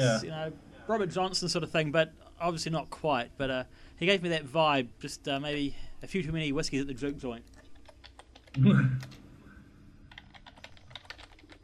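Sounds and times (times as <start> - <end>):
speech: 0.0 - 7.5, 8.5 - 9.2
rapid computer keyboard typing: 7.5 - 9.2, 10.1 - 11.6.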